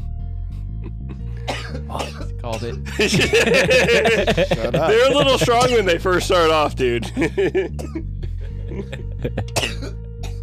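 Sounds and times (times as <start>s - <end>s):
short throaty hacks: 0.8s - 10.4s
person coughing harshly: 1.4s - 6.1s, 7.0s - 8.1s, 9.4s - 10.4s
speech: 1.9s - 8.0s, 8.8s - 9.7s
laughter: 2.6s - 9.6s.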